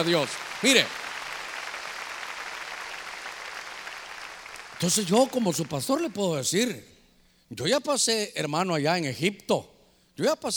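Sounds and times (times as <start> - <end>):
speech: 0.0 - 1.0, 4.8 - 10.5
church audience clapping hands loudly: 0.0 - 6.4.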